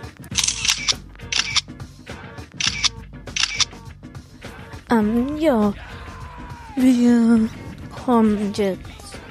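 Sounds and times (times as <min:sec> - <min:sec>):
camera shutters clicking on a photo rally at an alpine lake: 0:00.3 - 0:01.6, 0:02.6 - 0:03.8
speech: 0:04.9 - 0:05.9, 0:06.8 - 0:08.9.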